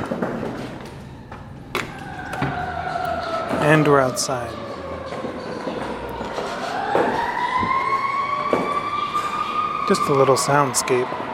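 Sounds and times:
low constant hum: 0:00.0 - 0:04.8
doors opening and closing: 0:00.0 - 0:10.3
speech: 0:03.7 - 0:04.8, 0:09.9 - 0:11.2.

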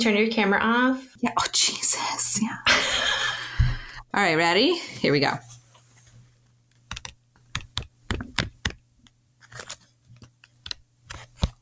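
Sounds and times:
speech: 0:00.0 - 0:03.3, 0:04.1 - 0:05.5
faint steady hum: 0:00.0 - 0:11.6
plastic calculator buttons clicking: 0:06.9 - 0:08.8.

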